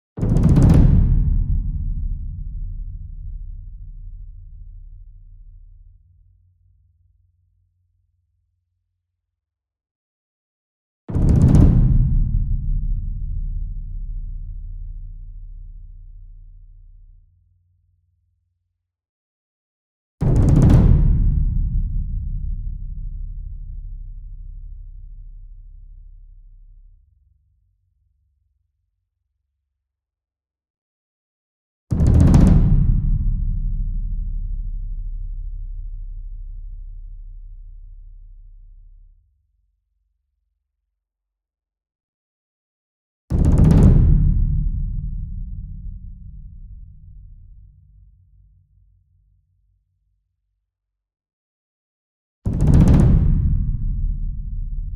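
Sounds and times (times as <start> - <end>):
taiko drum roll: 0.2 - 2.4, 11.2 - 13.0, 20.2 - 22.2, 32.0 - 34.0, 43.4 - 46.2, 52.5 - 54.9
concert bass drum: 0.2 - 4.7, 11.2 - 13.8, 20.2 - 23.3, 32.0 - 36.0, 43.4 - 47.5, 52.5 - 54.9.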